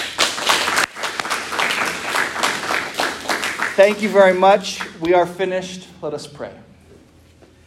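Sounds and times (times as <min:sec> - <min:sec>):
room full of people applauding for an election vote: 0:00.0 - 0:04.6
speech: 0:03.8 - 0:06.7.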